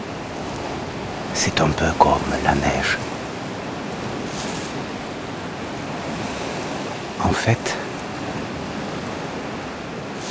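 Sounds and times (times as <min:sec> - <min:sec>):
ocean surf with breaking waves roaring: 0:00.0 - 0:10.3
speech: 0:01.4 - 0:03.1, 0:07.2 - 0:07.8.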